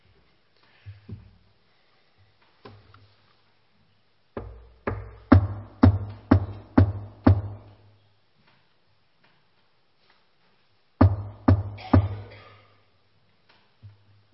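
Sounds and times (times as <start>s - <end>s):
solid knocking on a door: 4.4s - 7.7s, 11.0s - 12.3s.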